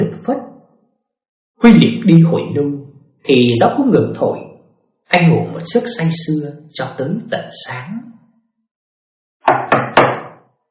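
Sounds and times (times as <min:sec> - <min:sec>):
speech: 0:01.6 - 0:04.4, 0:05.1 - 0:08.2
loud knocking on a door: 0:09.4 - 0:10.5.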